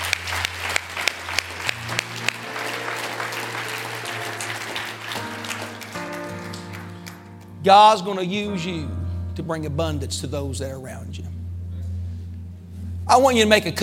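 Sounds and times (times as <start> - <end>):
audience clapping hands: 0.0 - 7.3
sustained organ or keyboard chord: 0.0 - 13.8
speech: 7.6 - 11.4, 13.1 - 13.8.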